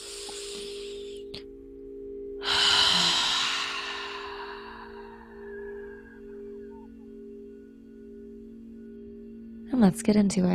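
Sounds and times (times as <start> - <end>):
slow breathing with a long exhale: 0.0 - 1.4, 2.4 - 7.0
speech: 9.8 - 10.5.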